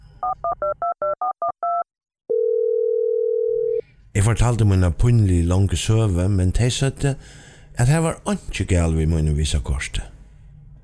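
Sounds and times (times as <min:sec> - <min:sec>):
speech: 0:00.3 - 0:00.9, 0:04.2 - 0:10.1
steady telephone dial tone: 0:00.4 - 0:03.8.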